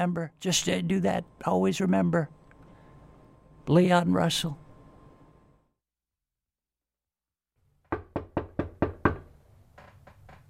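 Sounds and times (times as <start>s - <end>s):
speech: 0.0s - 2.4s, 3.7s - 4.6s
knocking on a door: 7.8s - 9.4s.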